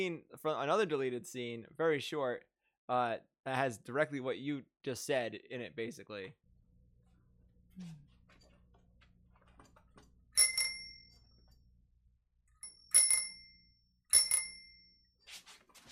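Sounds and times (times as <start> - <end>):
speech: 0.0 - 6.4, 7.8 - 8.1
bicycle bell ringing: 10.4 - 11.6, 12.6 - 15.1.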